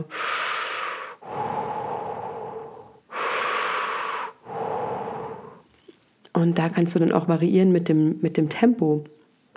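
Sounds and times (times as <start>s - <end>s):
speech: 0.0s - 0.3s, 6.4s - 9.2s
continuous breathing in and out: 0.0s - 6.2s.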